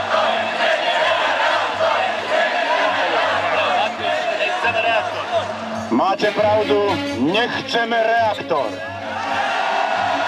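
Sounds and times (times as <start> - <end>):
large crowd roaring and shouting: 0.0 - 6.5, 8.8 - 10.2
speech: 6.0 - 8.9.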